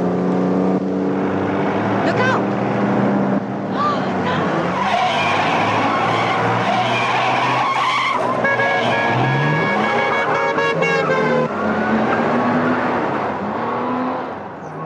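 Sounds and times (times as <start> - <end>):
speeding car engine roaring: 0.0 - 14.8
car tires skidding and squealing: 3.8 - 14.8.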